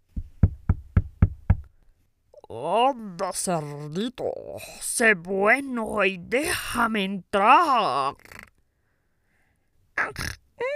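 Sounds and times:
firm knocking on a wooden door: 0.1 - 1.7
speech: 2.5 - 8.3.

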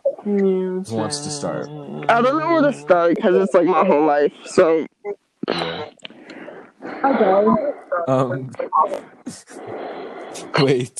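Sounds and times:
faint murmured voice sounds: 0.0 - 4.6, 5.4 - 10.9
speech: 0.2 - 4.9, 7.0 - 10.9
laughter: 0.9 - 4.2
airy breathing right at the microphone: 5.5 - 7.9, 9.0 - 10.6.

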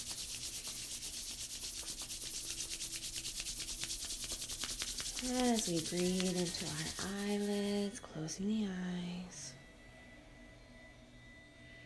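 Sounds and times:
hands rubbing together to warm them: 0.0 - 7.9
speech: 5.2 - 9.4.

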